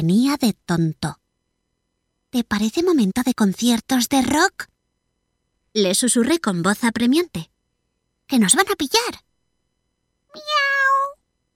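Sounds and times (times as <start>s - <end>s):
speech: 0.0s - 1.2s, 2.3s - 4.7s, 5.8s - 7.5s, 8.3s - 9.3s
cat meowing: 10.3s - 11.2s.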